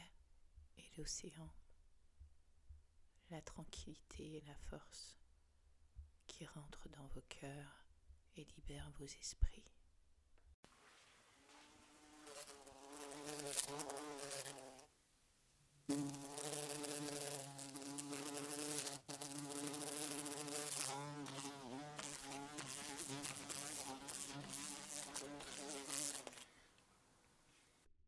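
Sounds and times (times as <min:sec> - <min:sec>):
speech: 0:01.0 - 0:01.6, 0:03.3 - 0:05.2, 0:06.3 - 0:07.8, 0:08.4 - 0:09.8, 0:13.5 - 0:14.6
bumblebee buzzing loudly: 0:11.4 - 0:14.9, 0:15.9 - 0:26.6
bumblebee bumping against window glass: 0:11.5 - 0:14.9, 0:15.9 - 0:26.4.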